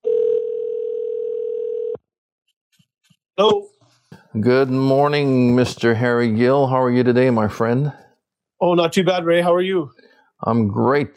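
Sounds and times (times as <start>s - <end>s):
telephone dial tone: 0.0s - 2.0s
speech: 3.4s - 3.7s, 4.3s - 8.0s, 8.6s - 11.1s.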